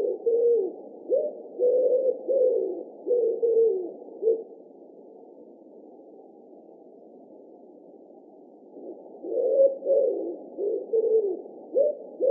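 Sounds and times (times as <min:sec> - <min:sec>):
common wood pigeon cooing: 0:00.0 - 0:04.7, 0:08.8 - 0:12.2.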